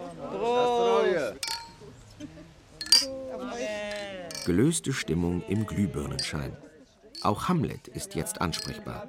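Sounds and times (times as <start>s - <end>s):
murmur of a lively crowd: 0.0s - 9.0s
champagne glasses clinking in a toast at a premiere celebration: 1.4s - 1.9s, 2.8s - 3.2s, 3.9s - 4.6s, 6.2s - 6.5s, 7.2s - 7.5s, 8.4s - 8.9s
speech: 4.5s - 9.0s.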